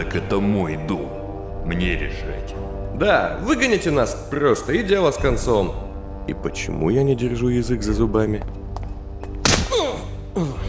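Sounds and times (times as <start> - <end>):
speech: 0.0 - 8.6
heavy punch to the stomach: 9.4 - 9.9.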